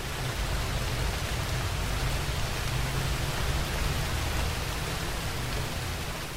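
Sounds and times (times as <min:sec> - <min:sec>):
heavy rain pattering on leaves and forest floor in a forest: 0:00.0 - 0:06.3.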